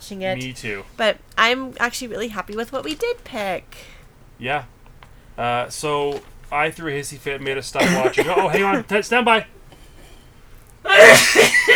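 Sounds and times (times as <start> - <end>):
speech: 0.1 - 4.8, 5.4 - 9.6, 10.9 - 11.7
laughter: 5.4 - 9.6, 10.9 - 11.7
person sneezing: 7.8 - 8.8, 10.9 - 11.7.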